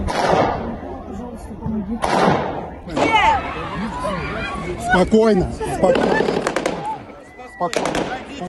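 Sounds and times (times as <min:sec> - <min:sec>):
assault rifle automatic gunfire: 0:00.0 - 0:00.6, 0:02.0 - 0:03.3, 0:05.9 - 0:07.0, 0:07.7 - 0:08.4
agitated people shouting and crying out: 0:00.0 - 0:08.4
laughter: 0:00.0 - 0:08.4.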